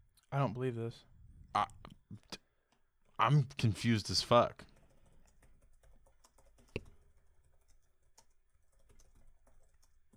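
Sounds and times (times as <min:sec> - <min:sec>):
speech: 0:00.3 - 0:02.3, 0:03.2 - 0:04.7
typing on a computer keyboard: 0:04.6 - 0:10.1.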